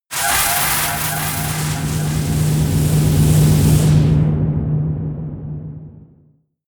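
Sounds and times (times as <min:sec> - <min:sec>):
air screaming vortex: 0:00.1 - 0:05.2.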